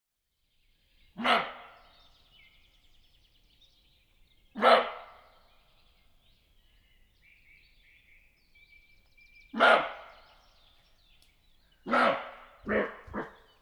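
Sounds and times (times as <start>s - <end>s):
roe deer barking: 1.2s - 1.7s, 4.6s - 5.1s, 9.6s - 10.2s, 11.9s - 13.5s.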